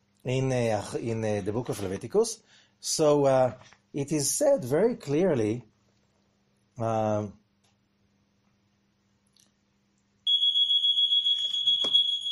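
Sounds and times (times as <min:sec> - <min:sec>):
speech: 0:00.2 - 0:05.7, 0:06.8 - 0:07.4
alarm going off with a piercing steady high-pitched tone: 0:10.3 - 0:12.2.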